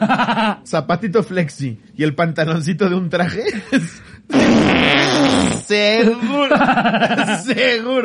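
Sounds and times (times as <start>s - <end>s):
laughter: 0.0s - 0.6s, 6.0s - 7.9s
speech: 0.2s - 8.0s
loud raspy fart: 4.3s - 5.7s.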